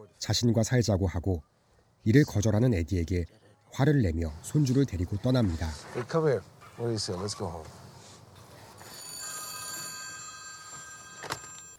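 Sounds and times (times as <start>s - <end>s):
speech: 0.1s - 7.8s
telephone ringing with electronic trill: 8.7s - 11.7s.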